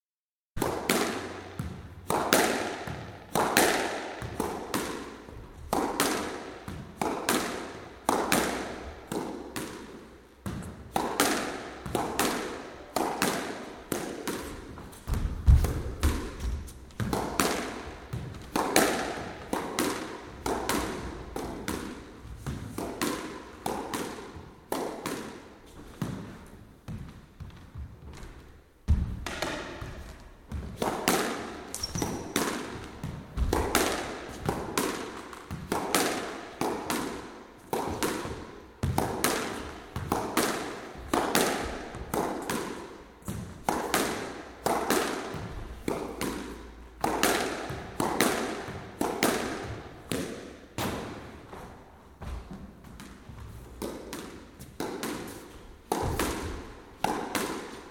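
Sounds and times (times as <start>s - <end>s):
squash played by one person on court: 0.6s - 57.8s.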